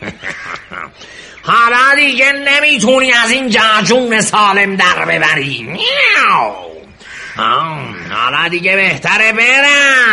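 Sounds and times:
laughter: 0:00.0 - 0:01.2
speech: 0:00.8 - 0:06.7, 0:07.4 - 0:10.1
cat meowing: 0:05.8 - 0:06.8.

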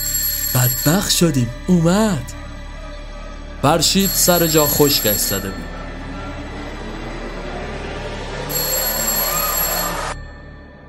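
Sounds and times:
electronic doorbell chime: 0:00.0 - 0:01.1, 0:04.0 - 0:05.8, 0:08.5 - 0:10.8
speech: 0:00.6 - 0:02.4, 0:03.6 - 0:05.8.

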